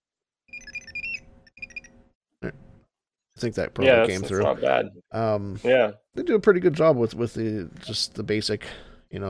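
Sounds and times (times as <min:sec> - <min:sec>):
basic 90s-style high-pitched electronic beeps: 0:00.5 - 0:02.0
speech: 0:03.4 - 0:09.2.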